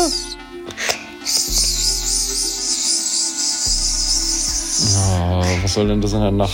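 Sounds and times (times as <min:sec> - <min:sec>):
crickets chirping in a dense chorus: 0:01.2 - 0:05.6
speech: 0:05.6 - 0:06.5.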